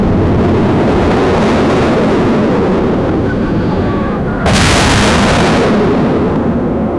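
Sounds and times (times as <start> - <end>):
aircraft flyover: 0.2 - 6.9
machine gun ripping: 4.5 - 5.8.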